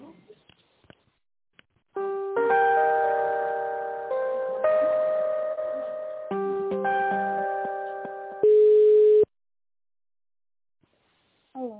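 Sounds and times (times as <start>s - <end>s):
electronic melody on a telephone line while a call is transferred: 2.0s - 9.2s.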